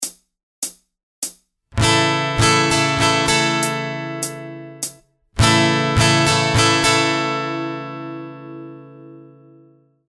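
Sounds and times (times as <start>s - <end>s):
guitar with capo strumming a waltz in three-four time: 1.8s - 4.8s, 5.4s - 9.9s.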